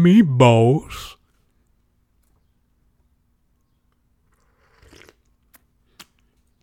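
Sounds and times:
speech: 0:00.0 - 0:01.2
slurping sip of tea: 0:04.3 - 0:05.2.

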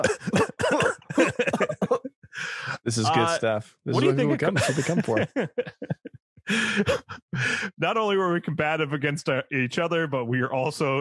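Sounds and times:
several people coughing with rough hacking coughs: 0:00.0 - 0:02.1, 0:04.0 - 0:07.2
several people clearing their throats: 0:00.0 - 0:03.4
laughter: 0:00.0 - 0:07.8
speech: 0:02.9 - 0:05.7, 0:06.5 - 0:10.9.

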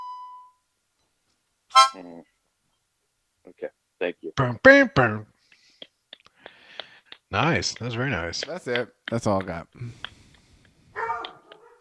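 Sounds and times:
speech: 0:01.8 - 0:02.3, 0:03.5 - 0:05.3, 0:07.3 - 0:10.1
dog giving a sharp harmonic bark and yelp: 0:10.9 - 0:11.7.

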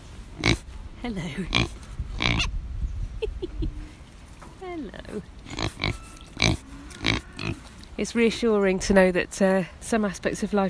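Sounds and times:
pigs grunting and snuffling in the dirt: 0:00.4 - 0:00.7, 0:01.3 - 0:02.5, 0:05.4 - 0:07.7
speech: 0:00.4 - 0:01.8, 0:04.7 - 0:05.6, 0:08.0 - 0:10.6.

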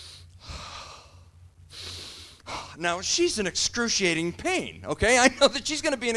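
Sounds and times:
exaggerated rhythmic childbirth-class breathing demonstration: 0:00.0 - 0:02.9
speech: 0:02.8 - 0:06.1.

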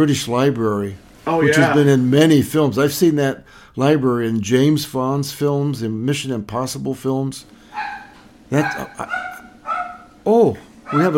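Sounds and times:
speech: 0:00.0 - 0:07.6, 0:08.5 - 0:09.3, 0:10.2 - 0:11.1
dog barking: 0:07.7 - 0:10.2, 0:10.9 - 0:11.1.

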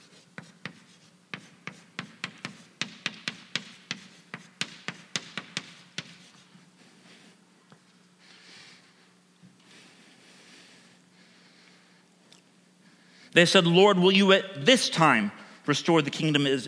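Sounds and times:
writing on a board: 0:00.0 - 0:07.2
speech: 0:13.4 - 0:16.6.

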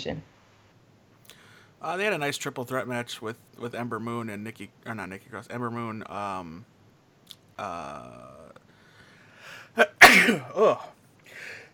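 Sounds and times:
speech: 0:00.0 - 0:00.4, 0:01.8 - 0:06.7, 0:07.3 - 0:08.5, 0:09.8 - 0:11.0
person sneezing: 0:10.0 - 0:10.8.

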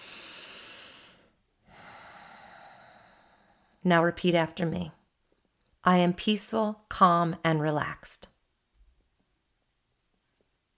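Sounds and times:
slow deep breathing: 0:00.0 - 0:03.8
speech: 0:03.8 - 0:05.0, 0:05.8 - 0:08.3.

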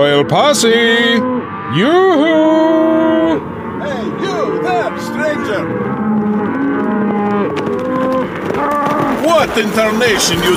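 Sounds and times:
speech: 0:00.0 - 0:06.0, 0:08.7 - 0:10.5
cattle mooing in long low droning calls: 0:00.0 - 0:10.5.

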